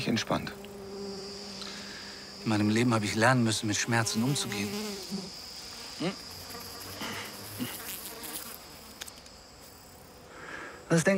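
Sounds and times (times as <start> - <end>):
speech: 0.0 - 0.6, 2.4 - 5.4, 6.0 - 6.2, 10.9 - 11.1
bee buzzing: 0.0 - 11.1
crickets chirring: 0.0 - 11.1.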